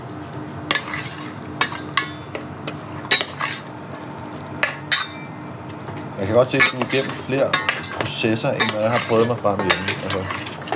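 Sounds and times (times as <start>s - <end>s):
metal kitchenware clanking and scraping on a stovetop: 0.7s - 10.7s
speech: 6.2s - 10.5s.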